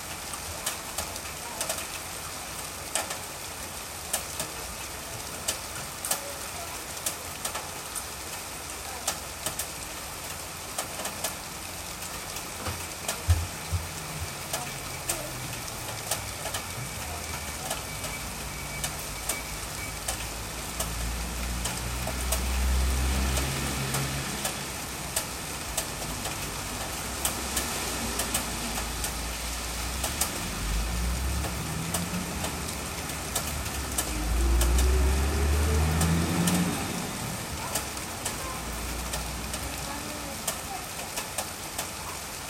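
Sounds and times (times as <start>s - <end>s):
steady dense rain: 0.0s - 42.4s
vehicles passing with low engine rumbles: 0.1s - 42.4s
scattered drips: 12.2s - 39.8s.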